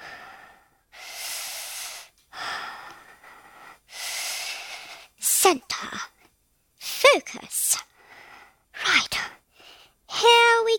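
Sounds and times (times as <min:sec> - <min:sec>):
slow deep breathing: 0:00.0 - 0:05.2, 0:07.9 - 0:08.7
speech: 0:05.4 - 0:06.1, 0:07.1 - 0:07.7.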